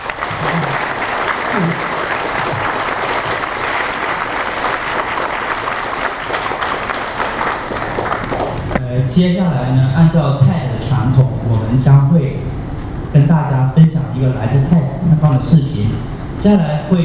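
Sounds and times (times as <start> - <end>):
large audience applauding: 0.0 - 8.8
speech: 1.6 - 1.9, 9.2 - 12.5, 13.1 - 17.0.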